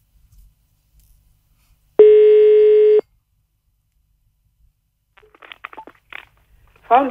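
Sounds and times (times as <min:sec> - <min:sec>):
telephone ringing tone buzzing hum: 0:02.0 - 0:03.0.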